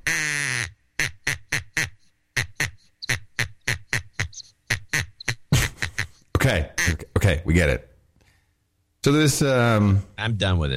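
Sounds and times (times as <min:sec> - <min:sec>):
duck call quacking: 0:00.0 - 0:07.1
speech: 0:06.5 - 0:07.9, 0:09.0 - 0:10.7.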